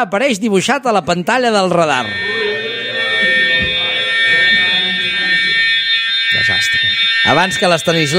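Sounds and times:
speech: 0.0s - 2.4s, 7.3s - 8.1s
nuclear attack alarm at a missile-warning radar post: 1.7s - 8.1s.

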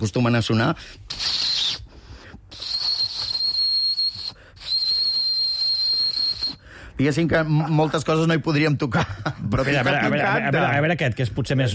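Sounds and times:
speech: 0.0s - 1.3s, 7.0s - 11.7s
whistling blown through a ballpoint pen: 1.1s - 6.8s.

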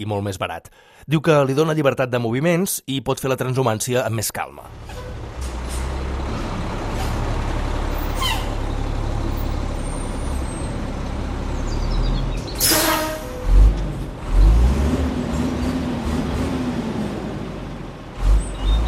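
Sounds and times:
speech: 0.0s - 5.1s
tractor-trailer truck engine rumbling and revving: 4.4s - 18.8s
tractor-trailer truck air-brake hiss: 12.6s - 13.2s.

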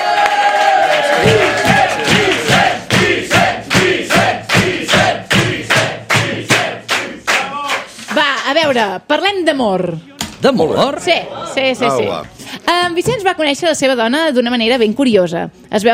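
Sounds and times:
audience cheering and whooping: 0.0s - 2.6s
people shouting: 0.0s - 5.7s
rhythmic clapping in unison: 0.1s - 8.7s
speech: 8.7s - 15.9s.

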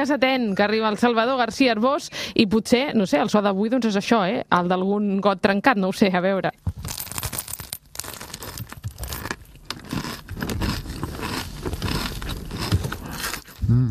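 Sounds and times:
speech: 0.0s - 6.6s
flaky horn-shaped pastries crunching and crumbling: 6.7s - 13.6s
wrapping paper crackling and crinkling: 6.7s - 13.6s.

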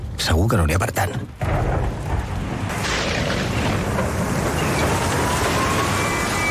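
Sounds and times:
heavy rain pouring down: 0.0s - 6.4s
speech: 0.2s - 2.0s
deep rolling rumble of thunder: 1.3s - 6.4s.

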